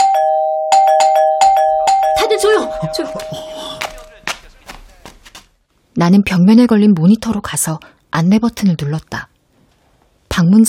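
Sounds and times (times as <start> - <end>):
electronic doorbell chiming: 0.0 - 4.2
speech: 2.3 - 3.5, 6.0 - 9.3, 10.4 - 10.6.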